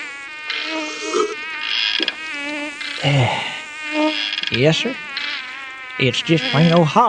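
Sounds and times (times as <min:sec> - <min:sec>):
mosquito whine circling near the ear: 0:00.0 - 0:07.0
speech: 0:03.0 - 0:03.4, 0:04.5 - 0:05.1, 0:06.0 - 0:07.0.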